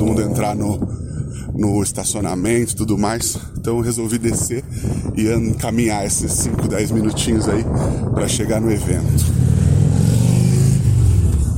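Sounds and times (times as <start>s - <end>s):
car engines revving: 0.0s - 1.3s, 8.8s - 11.5s
speech: 0.4s - 9.5s.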